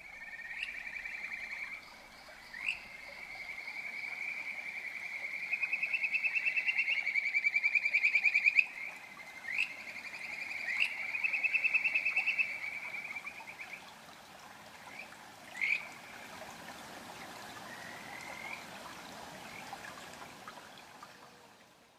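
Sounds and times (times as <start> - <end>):
Kajika frogs (Buergeria buergeri) calling by a stream: 0.0 - 13.9, 14.8 - 16.4, 17.6 - 18.7
constant watery hiss of a stream: 0.0 - 21.9.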